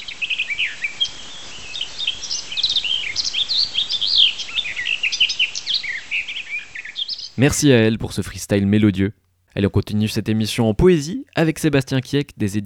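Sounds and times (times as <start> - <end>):
garden warbler singing a rapid warbling song: 0.0 - 7.6
speech: 7.4 - 12.6.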